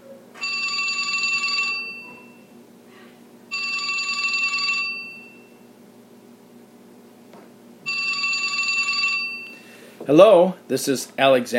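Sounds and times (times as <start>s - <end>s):
old-fashioned telephone ringing: 0.4s - 2.4s, 3.5s - 5.6s, 7.9s - 9.6s
speech: 10.1s - 11.5s.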